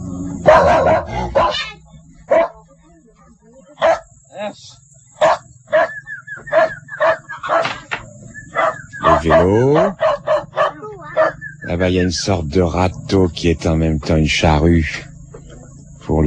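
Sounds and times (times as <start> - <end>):
thin steady whine: 0.0 - 16.2
dog on a log barking in short sharp bursts: 0.4 - 2.6, 3.8 - 4.2, 5.2 - 11.5
speech: 9.4 - 10.0, 11.8 - 15.1.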